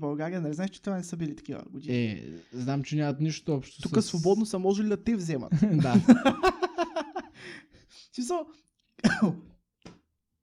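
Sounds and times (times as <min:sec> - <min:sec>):
speech: 0:00.0 - 0:06.7, 0:07.4 - 0:09.6
laughter: 0:05.5 - 0:07.5
throat-clearing cough: 0:09.0 - 0:09.6.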